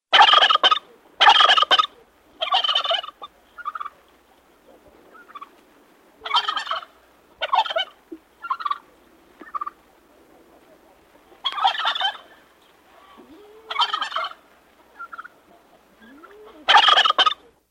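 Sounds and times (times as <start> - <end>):
multiple turkeys gobbling: 0.1 - 17.6.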